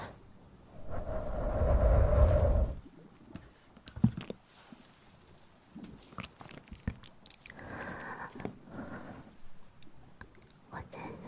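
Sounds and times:
heavy rubbing rumble of ear massage: 0.8 - 2.9
wet wavering mouth noises: 5.8 - 8.5.

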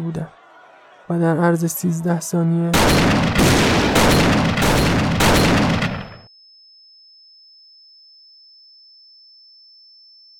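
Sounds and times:
speech: 0.0 - 0.4, 1.1 - 4.6
dense volley of rifle gunfire: 2.8 - 6.2.

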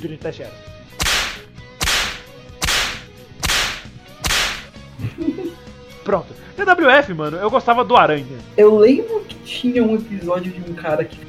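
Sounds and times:
speech: 0.0 - 1.5, 6.1 - 11.2
whip cracks: 1.0 - 4.7
laughter: 5.0 - 5.7.

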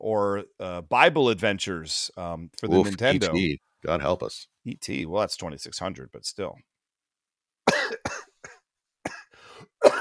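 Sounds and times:
speech: 0.0 - 6.7
person coughing: 7.7 - 9.9.

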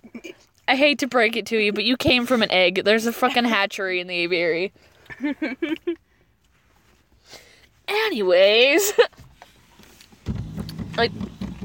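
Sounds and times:
speech: 0.7 - 6.0, 7.3 - 9.2, 11.0 - 11.3
broken chair being moved, scraping and creaking: 9.8 - 11.6.

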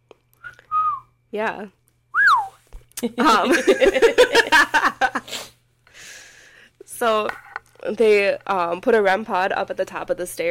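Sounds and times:
short whistled notes inside a house: 0.4 - 1.2, 2.1 - 2.6
speech: 1.3 - 1.8, 3.0 - 5.5, 7.0 - 10.4
laughter: 3.1 - 5.2.

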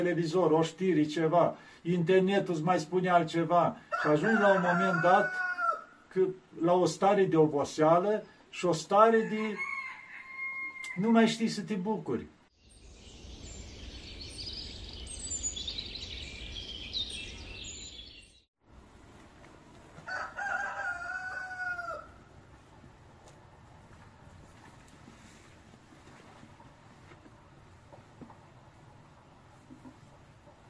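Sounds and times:
speech: 0.0 - 5.5, 6.1 - 9.7, 11.0 - 12.4
steady outdoor hiss and rustle: 0.0 - 17.8, 18.6 - 30.6
rooster crowing: 3.9 - 6.0, 9.2 - 11.0, 20.0 - 22.3.

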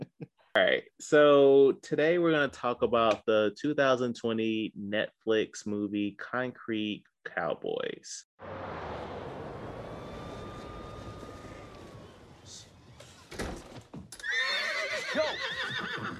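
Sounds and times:
speech: 0.6 - 8.6
horse neighing: 14.2 - 16.1.

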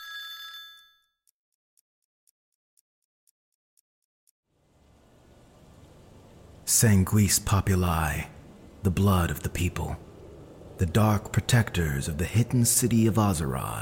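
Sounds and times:
phone ringing with a bright electronic tone: 0.0 - 1.0
steady wash of hiss and rumble: 4.6 - 13.8
speech: 6.7 - 10.1, 10.8 - 13.8.

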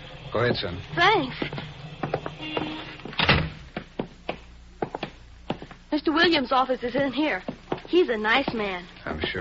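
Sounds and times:
speech: 0.3 - 1.6, 5.9 - 9.3
settlement house building door opening and closing: 2.1 - 3.7
door thudding closed: 3.1 - 3.6.

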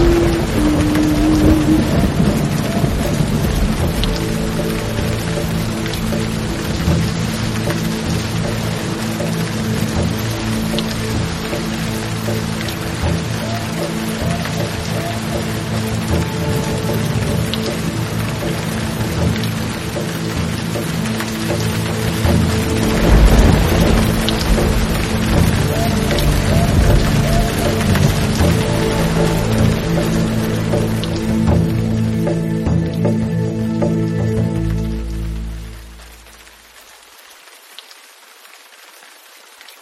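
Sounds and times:
low rumble: 0.0 - 10.5, 22.2 - 32.9
heavy rain falling: 0.0 - 39.8.

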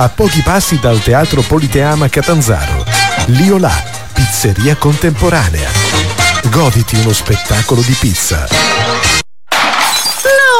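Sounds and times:
speech: 0.0 - 9.1
smartphone screen shattering: 9.5 - 10.3.

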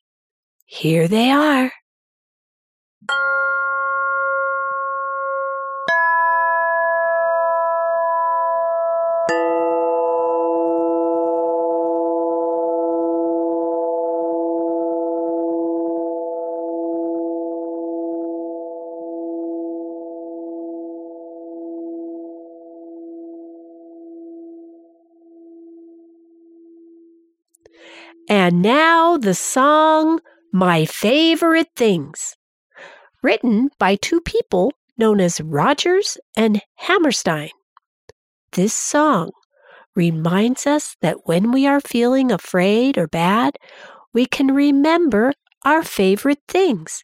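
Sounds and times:
speech: 0.7 - 1.8, 3.0 - 3.5, 28.5 - 32.4, 33.2 - 37.6, 38.5 - 39.4, 40.0 - 47.0
chimes struck with bright bell-like tones: 3.1 - 19.2.

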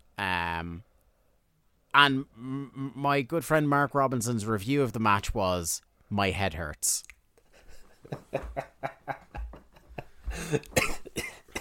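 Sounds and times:
speech: 0.6 - 0.9, 2.0 - 7.1, 8.1 - 9.0, 10.4 - 11.3
laughter: 7.5 - 10.8
person coughing with throaty hacks: 10.3 - 11.5.

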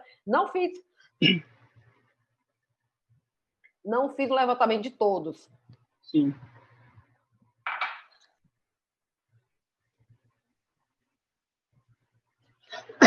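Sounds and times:
speech: 0.2 - 1.5, 3.8 - 6.5
short harsh coughs: 1.2 - 1.5, 12.8 - 13.0.

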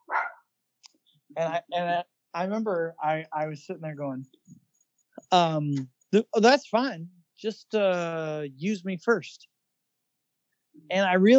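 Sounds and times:
dog bark: 0.0 - 0.5
speech: 1.3 - 4.5, 5.3 - 9.5, 10.9 - 11.3.

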